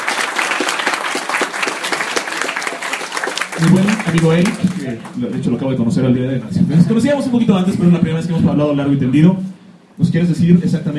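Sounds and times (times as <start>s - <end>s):
audience applause: 0.0s - 5.5s
speech: 3.6s - 9.5s, 10.1s - 10.9s.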